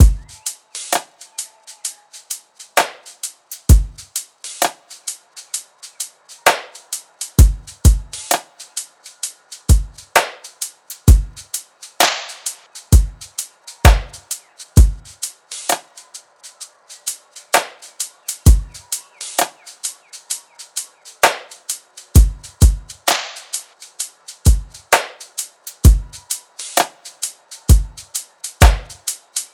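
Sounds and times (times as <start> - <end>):
full drum loop: 0.0 - 29.5.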